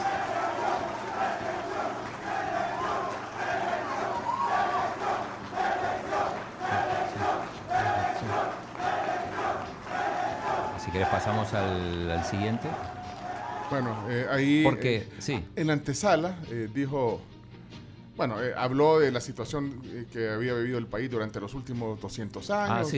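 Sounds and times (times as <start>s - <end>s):
large crowd applauding, cheering and shouting: 0.0s - 14.2s
speech: 11.0s - 13.0s, 13.7s - 17.3s, 18.2s - 22.9s.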